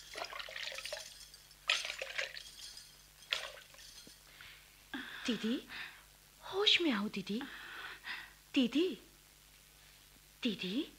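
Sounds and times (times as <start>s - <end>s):
water splashing: 0.0s - 2.6s, 3.3s - 3.8s
soft steady water trickle: 0.0s - 4.1s
speech: 5.3s - 5.9s, 6.5s - 7.6s, 8.5s - 9.1s, 10.4s - 10.9s.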